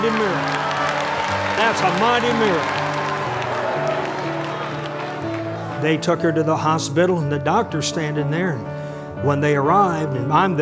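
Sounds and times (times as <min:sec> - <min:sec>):
speech: 0:00.0 - 0:00.6, 0:01.6 - 0:02.8, 0:05.8 - 0:10.5
audience clapping at a spoken gathering: 0:00.0 - 0:06.2.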